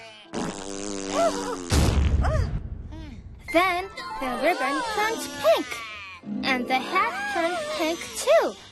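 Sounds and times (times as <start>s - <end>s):
buzzy wobbling fart sound effect: 0.3s - 2.2s
speech: 3.5s - 8.7s.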